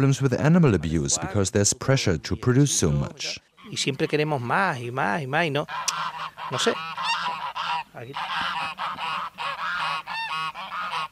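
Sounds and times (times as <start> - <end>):
speech: 0.0 - 7.1, 8.0 - 8.6
crowd of geese honking: 3.5 - 11.1.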